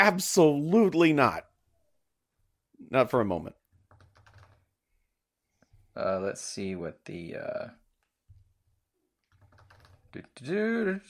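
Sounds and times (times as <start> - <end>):
speech: 0.0 - 1.5, 2.8 - 3.6, 6.0 - 7.8, 10.1 - 11.0
typing on a computer keyboard: 3.7 - 4.7, 9.2 - 10.2.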